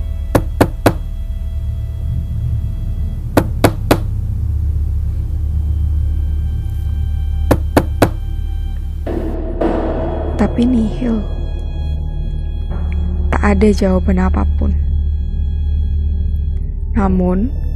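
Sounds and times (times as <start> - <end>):
steady low rumble: 0.0 - 17.7
pounding on a door: 0.3 - 1.1, 3.4 - 4.1, 7.5 - 8.2
speech: 10.6 - 11.4, 13.4 - 14.8, 17.0 - 17.6.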